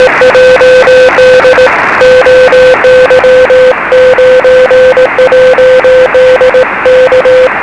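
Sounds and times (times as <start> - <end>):
CQ call in CW morse code on 23cm: 0.0 - 7.5.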